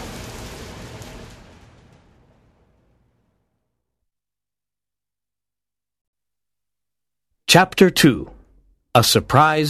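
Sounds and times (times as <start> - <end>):
steady rain falling: 0.0 - 2.6
speech: 7.5 - 8.3, 9.0 - 9.6.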